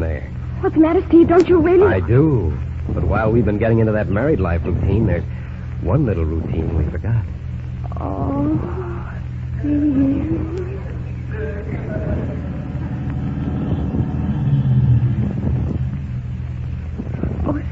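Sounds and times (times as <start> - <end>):
wind-like noise: 0.0 - 17.7
speech: 0.6 - 7.3, 8.0 - 8.8, 9.6 - 10.7
car driving up and stopping with low engine rumble: 11.8 - 17.4.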